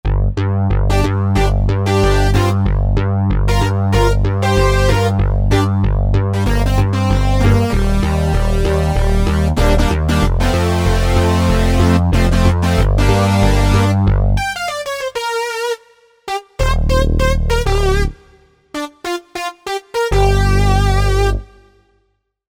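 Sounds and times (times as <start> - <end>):
synth bass split: 0.0 - 21.8.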